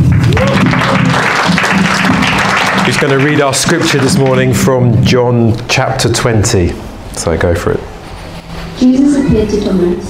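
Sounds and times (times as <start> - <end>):
crowd clapping: 0.0 - 4.8
speech: 2.9 - 7.9, 8.8 - 10.0.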